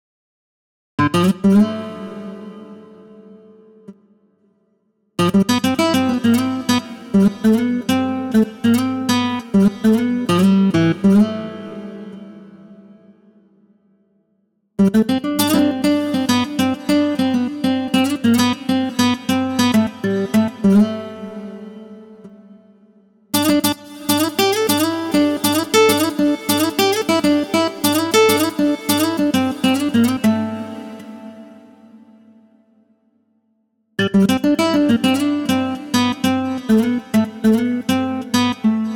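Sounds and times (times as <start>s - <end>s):
nylon guitar: 1.0s - 4.0s, 5.2s - 13.4s, 14.8s - 32.7s, 34.0s - 38.9s.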